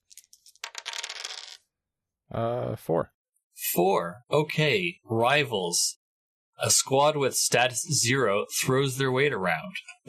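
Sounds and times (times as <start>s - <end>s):
three dice rolling on a hard table: 0.1s - 1.7s
speech: 2.3s - 6.0s, 6.6s - 10.0s.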